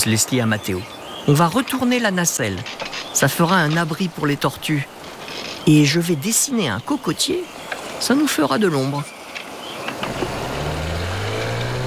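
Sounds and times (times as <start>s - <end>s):
speech: 0.0s - 4.9s, 5.6s - 9.2s
outboard motorboat engine droning as the boat approaches: 10.0s - 11.8s.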